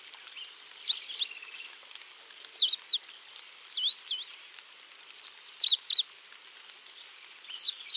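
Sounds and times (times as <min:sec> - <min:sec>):
Coal-crested finch Charitospiza eucosma singing: 0:00.4 - 0:01.8, 0:02.5 - 0:04.4, 0:05.6 - 0:06.0, 0:07.5 - 0:07.9.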